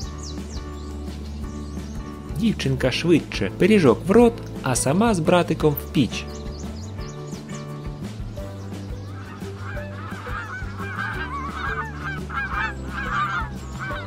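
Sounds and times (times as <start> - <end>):
speech: 2.4 - 6.4
flock of geese honking while flying: 9.1 - 14.0.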